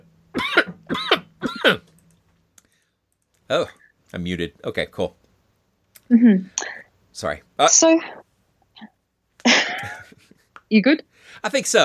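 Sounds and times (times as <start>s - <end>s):
forceful coughs: 0.4s - 1.9s, 9.5s - 10.0s
speech: 1.6s - 1.9s, 3.5s - 5.2s, 6.1s - 6.6s, 7.2s - 8.2s, 10.7s - 11.8s.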